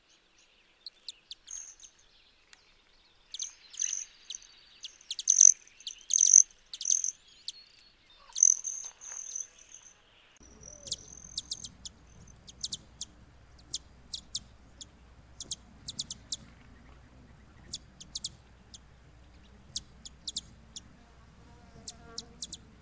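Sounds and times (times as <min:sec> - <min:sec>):
broad-tailed hummingbird chip calls: 0:03.4 - 0:07.6, 0:08.2 - 0:09.8, 0:10.4 - 0:22.8
low background rumble: 0:10.4 - 0:22.8.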